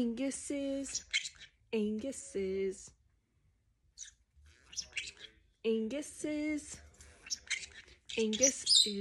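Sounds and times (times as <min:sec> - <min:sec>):
speech: 0:00.0 - 0:03.0, 0:04.8 - 0:06.8, 0:08.2 - 0:09.0
pet bird chirping and warbling: 0:00.9 - 0:01.6, 0:04.0 - 0:05.4, 0:07.2 - 0:09.0.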